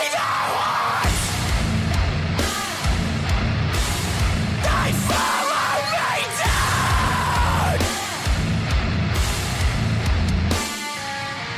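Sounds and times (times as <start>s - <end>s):
harsh screamed vocals in a hardcore song: 0.0s - 1.5s, 4.6s - 8.4s
distorted guitars in a hardcore song: 0.0s - 11.5s.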